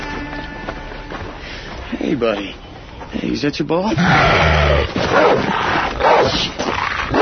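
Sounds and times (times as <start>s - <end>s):
speech: 2.1s - 7.2s
dog growling and snarling aggressively: 3.9s - 7.2s.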